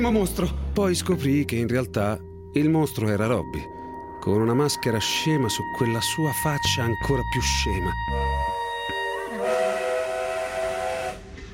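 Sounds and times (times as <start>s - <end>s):
speech: 0.0s - 8.5s
sustained multi-toned train whistle: 8.1s - 11.5s
rumble of moving train carriages: 8.9s - 11.5s.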